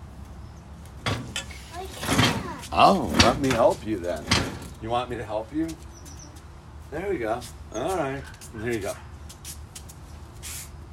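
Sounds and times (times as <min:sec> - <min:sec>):
chair dragged across the floor and pulled up to a table: 0:01.2 - 0:03.7
speech: 0:01.8 - 0:05.9, 0:06.9 - 0:09.1.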